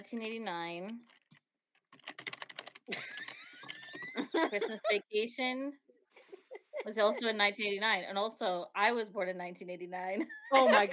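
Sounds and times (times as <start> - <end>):
speech: 0.0 - 1.2, 2.9 - 3.1, 4.4 - 5.8, 6.8 - 10.9
typing on a computer keyboard: 1.0 - 4.2
laughter: 2.9 - 5.0, 6.3 - 7.4, 10.4 - 10.9.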